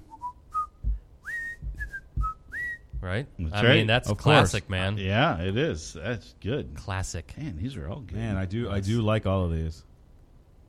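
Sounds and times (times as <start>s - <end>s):
cheerful whistled TV theme tune: 0.0s - 3.0s
soft low thumps marking a steady beat: 0.0s - 3.6s
speech: 3.0s - 9.9s.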